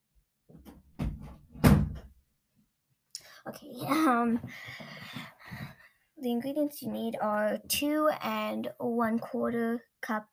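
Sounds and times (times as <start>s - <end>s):
door being pushed shut: 0.6s - 2.1s
speech: 3.5s - 5.6s, 6.2s - 10.3s.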